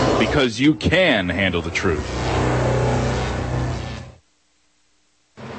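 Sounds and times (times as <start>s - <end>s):
speech: 0.2s - 2.4s
car engine revving: 1.4s - 4.2s.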